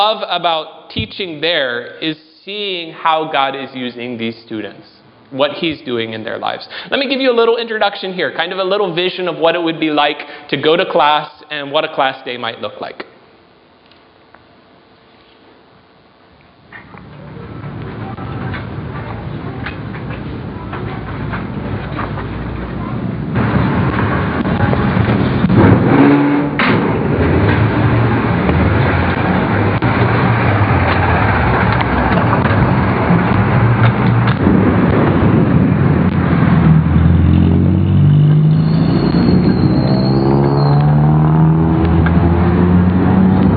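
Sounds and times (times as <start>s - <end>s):
speech: 0.0s - 13.1s
dense city traffic rumbling: 16.7s - 43.5s
car engines idling and revving: 17.0s - 43.5s.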